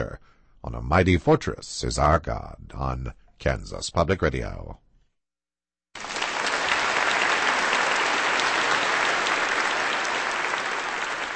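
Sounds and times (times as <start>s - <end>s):
speech: 0.0s - 4.8s
large crowd applauding in a reverberant hall: 6.0s - 11.3s.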